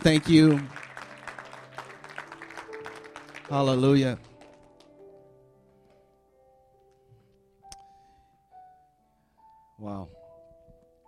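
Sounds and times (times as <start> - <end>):
speech: 0.0 - 0.8, 3.5 - 4.3, 9.8 - 10.2
crowd applauding: 0.0 - 5.0.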